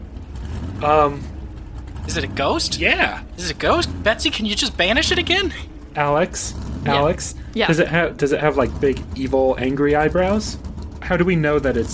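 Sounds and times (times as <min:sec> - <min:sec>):
steady low rumble: 0:00.0 - 0:11.9
speech: 0:00.8 - 0:01.3, 0:02.1 - 0:11.9
voice imitating a car engine revving: 0:06.9 - 0:08.0.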